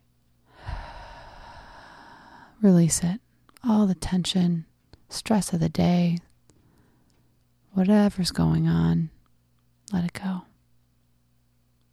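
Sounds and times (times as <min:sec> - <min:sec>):
deep breath in during a guided relaxation exercise: 0:00.5 - 0:02.6
speech: 0:02.6 - 0:06.3, 0:07.7 - 0:09.2, 0:09.9 - 0:10.5.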